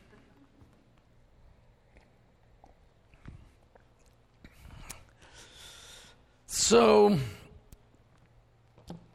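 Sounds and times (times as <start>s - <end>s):
person sipping water: 1.5s - 5.4s
swallowing water: 1.6s - 5.2s
speech: 6.7s - 7.4s.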